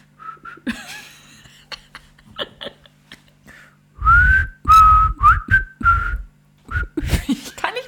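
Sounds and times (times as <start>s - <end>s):
person whistling a short halting melody: 0.2s - 0.6s, 4.0s - 7.0s
person laughing: 0.6s - 3.4s, 7.0s - 7.6s.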